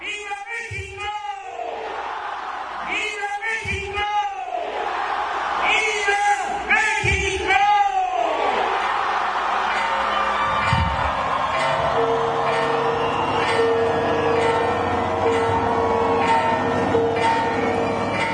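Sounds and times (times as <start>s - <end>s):
huge crowd roaring and cheering at the president's Independence Day shout: 0.0s - 18.3s
bells ringing: 9.0s - 18.3s.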